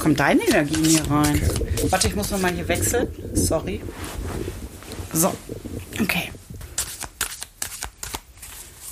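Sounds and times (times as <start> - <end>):
speech: 0.0 - 4.5, 5.2 - 6.3
playing cards shuffling: 6.8 - 8.9.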